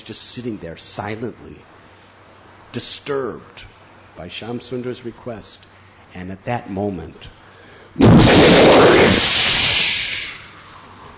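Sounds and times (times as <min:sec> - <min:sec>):
speech: 0:00.1 - 0:01.8, 0:02.8 - 0:07.4, 0:08.0 - 0:09.6
thunder from a lightning bolt striking a house: 0:08.0 - 0:09.8.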